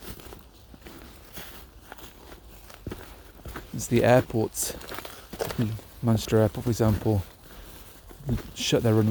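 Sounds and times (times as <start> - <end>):
careful footsteps crunching over slippery snowy ground: 0.0 - 9.0
outdoor noise: 0.0 - 9.0
speech: 3.8 - 4.9, 5.6 - 7.3, 8.2 - 9.0.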